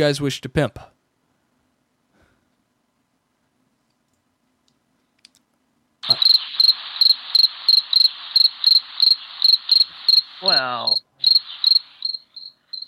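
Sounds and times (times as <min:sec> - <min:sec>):
speech: 0:00.0 - 0:00.9
crickets chirping: 0:06.0 - 0:12.8.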